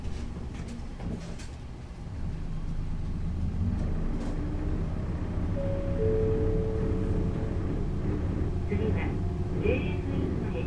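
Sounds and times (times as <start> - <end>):
steady low engine rumble inside a moving city bus: 0.0 - 10.6
thin rising whine: 5.6 - 10.6.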